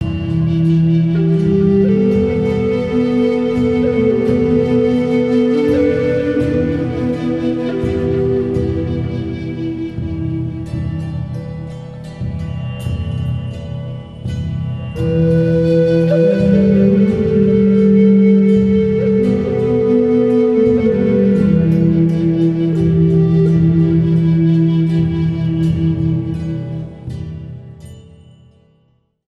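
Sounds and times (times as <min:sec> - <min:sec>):
flute: 0:00.0 - 0:28.3.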